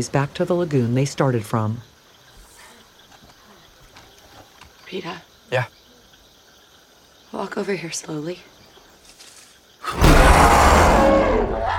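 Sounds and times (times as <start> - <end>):
speech: 0.0 - 1.9, 4.9 - 5.8, 7.3 - 8.5, 9.9 - 11.7
baboon-like monkey roaring: 9.8 - 11.7.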